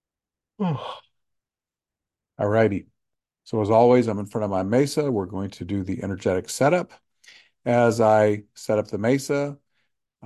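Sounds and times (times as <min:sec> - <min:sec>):
speech: 0:00.6 - 0:01.0, 0:02.4 - 0:09.6
person yawning: 0:00.6 - 0:01.2.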